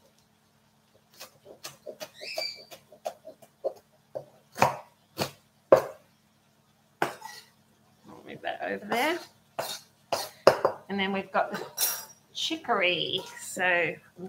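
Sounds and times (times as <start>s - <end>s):
sharp knife chopping bok choy on a cutting board: 1.1s - 6.0s, 7.0s - 7.4s
speech: 8.7s - 9.3s, 10.9s - 11.8s, 12.5s - 14.2s.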